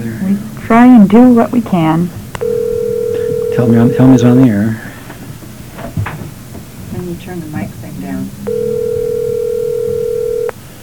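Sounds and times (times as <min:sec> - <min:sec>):
faint hum: 0:00.0 - 0:10.8
speech: 0:00.7 - 0:02.2, 0:03.6 - 0:04.8
telephone ringing tone on the line: 0:02.4 - 0:04.6, 0:08.5 - 0:10.6.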